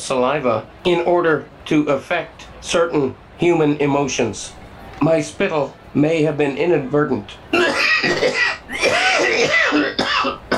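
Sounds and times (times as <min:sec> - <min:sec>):
speech: 0:00.1 - 0:07.5
person clearing throat: 0:07.5 - 0:10.5
person coughing: 0:07.5 - 0:10.5.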